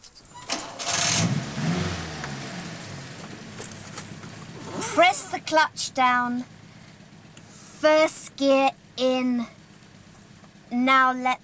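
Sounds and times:
car engine cranking and idling: 0:00.0 - 0:11.4
speech: 0:05.5 - 0:06.6, 0:07.8 - 0:09.6, 0:10.7 - 0:11.4.

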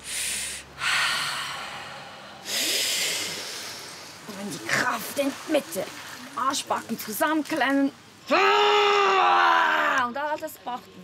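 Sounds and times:
person taking quick sharp noisy breaths in: 0:00.0 - 0:04.2
person's long steady airy exhale: 0:00.0 - 0:04.2
speech: 0:05.0 - 0:11.0.

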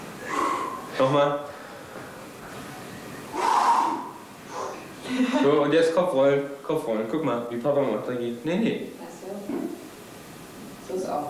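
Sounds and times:
breathing in and out during a breathing exercise: 0:00.2 - 0:00.9, 0:01.5 - 0:02.4, 0:03.3 - 0:05.4
speech: 0:01.0 - 0:01.6, 0:05.1 - 0:09.6.

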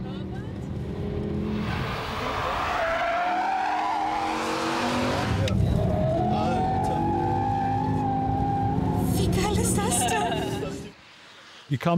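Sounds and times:
race car engines roaring on the Nordschleife track of the Nürburgring: 0:00.0 - 0:11.0
race car tires squealing and skidding through corners: 0:01.4 - 0:10.9
speech: 0:11.7 - 0:11.9.

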